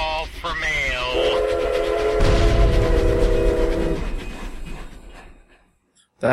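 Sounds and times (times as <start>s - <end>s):
train rumbling and rolling rail noise: 0.0s - 5.7s
passing train horn blast: 1.1s - 4.8s.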